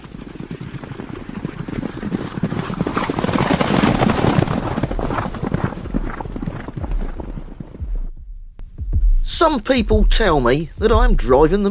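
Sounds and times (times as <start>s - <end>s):
horse hooves galloping: 0.0s - 8.2s
speech: 9.4s - 11.7s.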